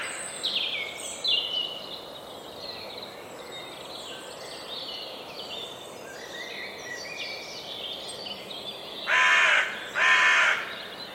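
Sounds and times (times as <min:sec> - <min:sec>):
bird giving harsh calls: 0:09.1 - 0:10.7.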